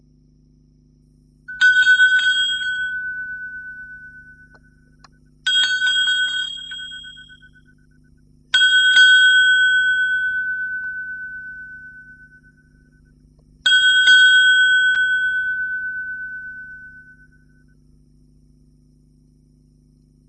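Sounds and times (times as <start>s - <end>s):
shop bell ringing: 1.5s - 4.6s, 5.5s - 7.5s, 8.6s - 12.3s, 13.7s - 17.3s.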